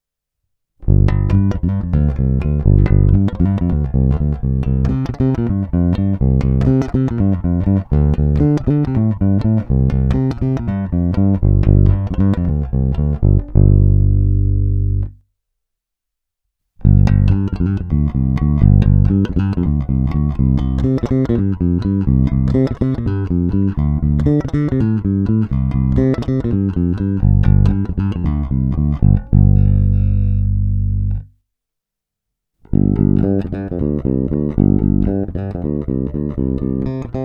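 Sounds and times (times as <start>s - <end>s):
jazz bass on a Sadowsky NYC Ultra Vintage J Bass Guitar: 0.8s - 15.2s, 16.8s - 31.3s, 32.7s - 37.2s.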